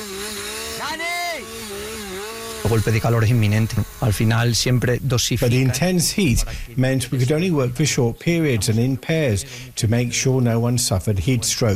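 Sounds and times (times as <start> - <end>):
chainsaw engine idling and revving: 0.0 - 5.0
speech: 2.6 - 11.7.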